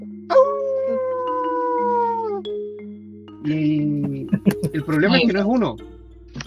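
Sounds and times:
wolf howling: 0:00.3 - 0:02.5
laughter: 0:04.0 - 0:05.4
speech: 0:04.4 - 0:05.9.

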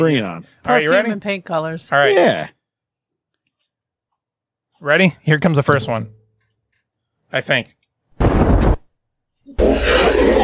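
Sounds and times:
speech: 0:00.0 - 0:02.6, 0:04.8 - 0:06.2, 0:07.3 - 0:07.8
video game monster roars: 0:09.6 - 0:10.4.

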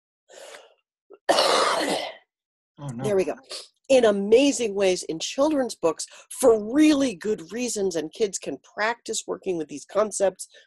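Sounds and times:
person coughing: 0:01.3 - 0:02.2
speech: 0:02.9 - 0:10.6.

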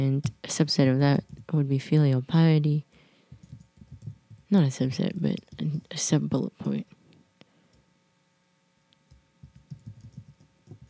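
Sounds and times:
speech: 0:00.0 - 0:02.9, 0:04.5 - 0:07.0
faint steady hum: 0:00.0 - 0:10.8
slow typing on a keyboard: 0:03.4 - 0:04.4, 0:09.1 - 0:10.8.

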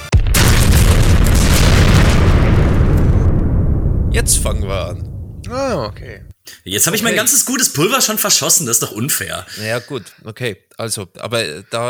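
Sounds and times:
loud cannon boom: 0:00.0 - 0:06.3
speech: 0:04.5 - 0:11.8.

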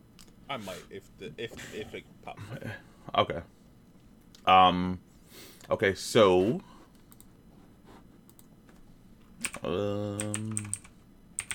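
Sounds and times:
speech: 0:00.5 - 0:03.6, 0:04.4 - 0:06.7, 0:09.6 - 0:10.8
typing on a computer keyboard: 0:09.4 - 0:11.5.

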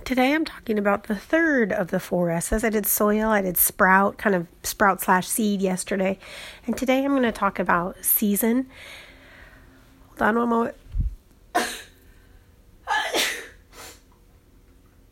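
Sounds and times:
speech: 0:00.1 - 0:09.0, 0:10.2 - 0:10.8
person sneezing: 0:12.9 - 0:14.0.

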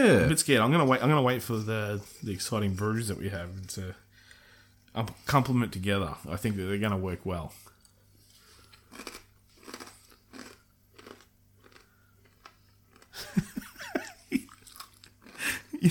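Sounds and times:
speech: 0:00.0 - 0:04.0, 0:05.0 - 0:07.7
person chewing crisp spicy food into the microphone: 0:07.8 - 0:13.5, 0:14.4 - 0:15.4.

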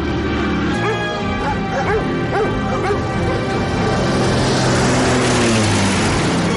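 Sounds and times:
small plane engine drone: 0:00.0 - 0:06.5
dog barking near a beach: 0:00.8 - 0:03.4.

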